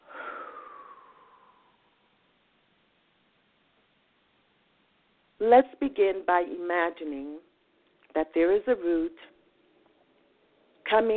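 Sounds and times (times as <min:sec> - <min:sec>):
deep breath during a guided breathing exercise: 0:00.0 - 0:02.1
speech: 0:05.4 - 0:07.5, 0:08.2 - 0:09.3, 0:10.9 - 0:11.1.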